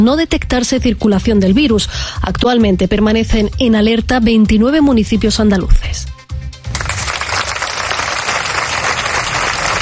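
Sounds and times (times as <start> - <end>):
speech: 0.0 - 6.2
crowd applauding: 6.7 - 9.7.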